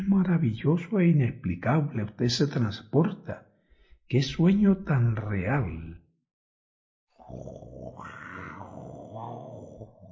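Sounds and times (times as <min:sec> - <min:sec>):
speech: 0:00.0 - 0:03.5, 0:04.1 - 0:06.0, 0:07.3 - 0:08.2
lion roaring: 0:07.2 - 0:10.1.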